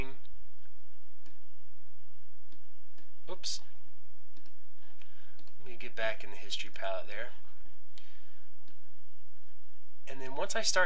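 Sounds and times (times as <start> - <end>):
low electrical hum: 0.0 - 10.8
computer mouse clicks during image-editing work: 0.6 - 1.4, 4.3 - 5.6, 7.9 - 8.9
speech: 3.4 - 3.8, 5.8 - 7.5, 10.1 - 10.8.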